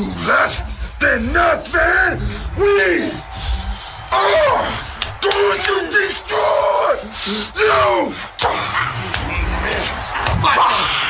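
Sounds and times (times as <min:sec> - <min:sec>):
speech: 0:00.0 - 0:03.2, 0:04.1 - 0:11.0
people grunting and shouting in a wrestling match: 0:00.0 - 0:11.0
sharp slaps in a wrestling match: 0:08.4 - 0:10.5.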